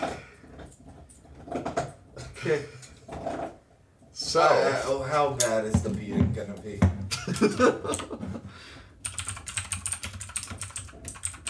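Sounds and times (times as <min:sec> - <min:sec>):
speech: 0:02.4 - 0:02.9, 0:04.3 - 0:08.2
laughter: 0:07.1 - 0:08.5
typing on a computer keyboard: 0:09.0 - 0:11.4.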